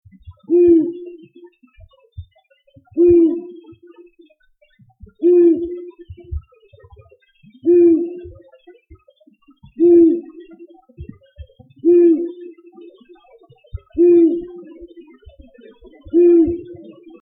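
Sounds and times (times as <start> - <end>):
male long-eared owl territorial call: 0.5 - 1.3, 3.0 - 3.8, 5.2 - 6.2, 7.6 - 8.4, 9.8 - 10.5, 11.8 - 13.0, 14.0 - 14.9, 16.1 - 17.2.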